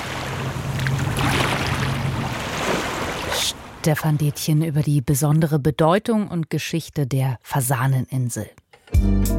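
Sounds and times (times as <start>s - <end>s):
Bidasoa river water flowing calmly toward the sea: 0.0s - 4.5s
speech: 3.8s - 9.3s.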